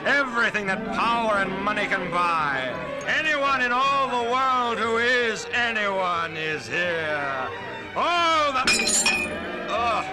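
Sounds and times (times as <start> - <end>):
speech: 0.0 - 10.1
glass breaking: 8.7 - 9.4.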